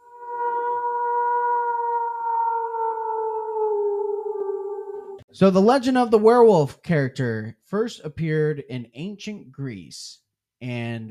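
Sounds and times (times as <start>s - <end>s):
wolf howling: 0.0s - 5.3s
speech: 5.4s - 11.0s.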